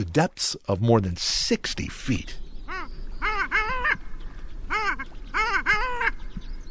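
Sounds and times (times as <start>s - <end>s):
speech: 0.0s - 2.4s
faint hiss: 0.0s - 6.6s
long-tailed duck calls: 2.7s - 4.0s, 4.7s - 6.2s.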